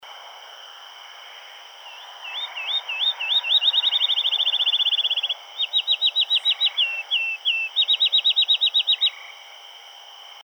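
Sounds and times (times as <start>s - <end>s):
field sparrow singing: 1.9s - 9.2s.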